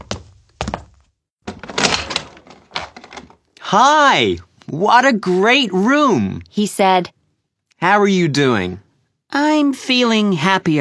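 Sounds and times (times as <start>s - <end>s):
door rattling as it swings open: 1.4s - 3.4s
speech: 3.7s - 7.2s, 7.8s - 10.7s.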